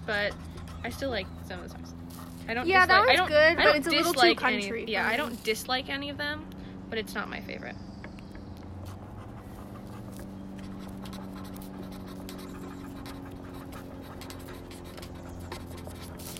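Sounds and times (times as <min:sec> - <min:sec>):
pen or pencil scratching on paper in handwriting: 0:00.0 - 0:04.5, 0:08.8 - 0:16.3
constant low hum: 0:00.0 - 0:16.3
speech: 0:00.1 - 0:07.9.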